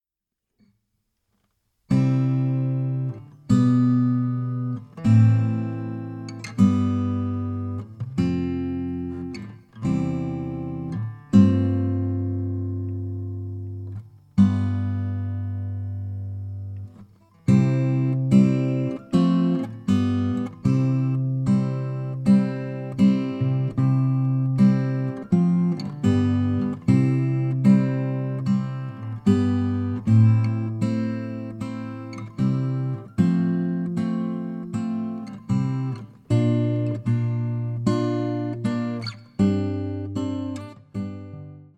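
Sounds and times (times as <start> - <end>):
guitar accompaniment: 1.4 - 41.7.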